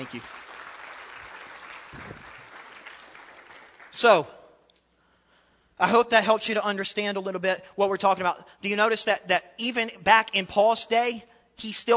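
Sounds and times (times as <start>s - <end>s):
speech: 0.0s - 0.4s, 4.0s - 4.4s, 5.8s - 11.9s
church service crowd applauding: 0.0s - 4.0s.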